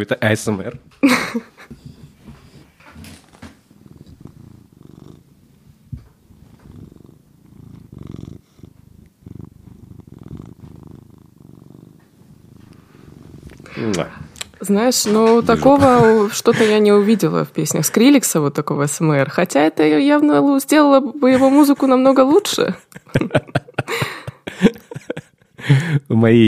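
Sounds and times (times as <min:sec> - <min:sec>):
speech: 0:00.0 - 0:01.8, 0:14.7 - 0:23.6, 0:25.7 - 0:26.4
cat purring: 0:00.4 - 0:25.6
rustling: 0:01.5 - 0:16.5
laughter: 0:15.1 - 0:17.4, 0:22.7 - 0:26.0.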